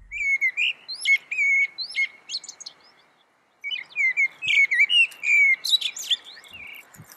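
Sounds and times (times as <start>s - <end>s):
common blackbird singing: 0.0s - 6.9s.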